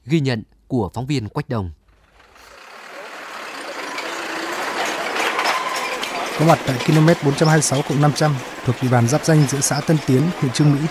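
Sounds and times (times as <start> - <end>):
speech: 0.1 - 1.8, 6.4 - 10.9
large trucks, motorbikes and cars on a potholed road: 1.8 - 10.9
vehicles clattering and rattling over rough potholed road: 1.8 - 10.9.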